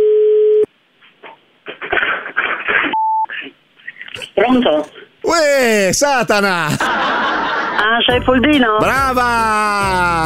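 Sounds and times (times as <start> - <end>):
telephone tone while placing a call: 0.0 - 0.7, 2.9 - 3.3
speech: 4.4 - 7.1, 7.8 - 10.2
laughter: 6.2 - 8.1.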